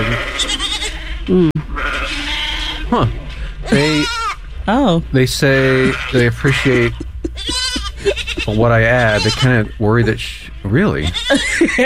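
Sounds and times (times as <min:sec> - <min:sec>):
goats bleating: 0:00.0 - 0:01.0, 0:01.7 - 0:02.9, 0:03.6 - 0:04.4, 0:05.4 - 0:09.8, 0:10.9 - 0:11.5
speech: 0:01.3 - 0:01.6, 0:02.9 - 0:03.9, 0:04.7 - 0:11.8
laughter: 0:05.4 - 0:11.8.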